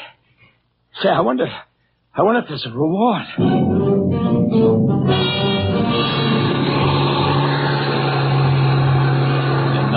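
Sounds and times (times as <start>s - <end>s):
speech: 1.0s - 3.9s, 4.5s - 5.4s
heavy bus engine revving and pulling away: 5.0s - 9.9s.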